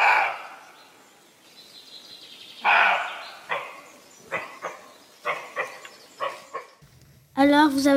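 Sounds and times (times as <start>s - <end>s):
roe deer barking cries: 0.0s - 0.8s, 2.6s - 6.8s.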